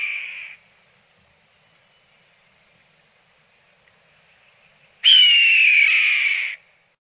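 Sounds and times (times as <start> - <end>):
red-tailed hawk screaming: 5.0 - 6.6.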